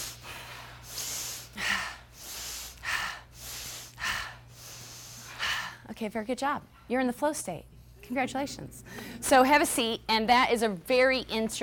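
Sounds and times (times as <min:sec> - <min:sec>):
fast deep breaths during a shoulder-raising exercise: 0:00.0 - 0:06.0
low steady hum: 0:00.0 - 0:11.6
speech: 0:06.0 - 0:11.6.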